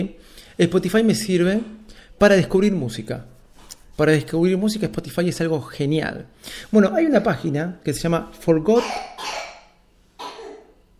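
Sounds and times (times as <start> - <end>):
speech: 0.0 - 3.3, 4.0 - 9.2
short sharp coughs: 8.7 - 10.8.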